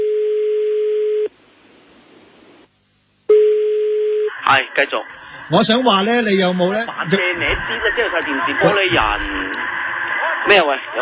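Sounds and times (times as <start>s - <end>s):
steady single-pitched telephone tone signalling an incoming call: 0.0s - 1.3s, 3.3s - 4.3s
speech: 4.5s - 9.8s, 10.4s - 10.9s.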